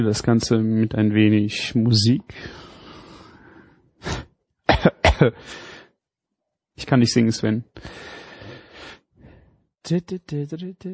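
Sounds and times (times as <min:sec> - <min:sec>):
speech: 0:00.0 - 0:02.6, 0:04.8 - 0:05.6, 0:06.8 - 0:08.2, 0:09.8 - 0:10.9
person coughing harshly: 0:04.1 - 0:05.4.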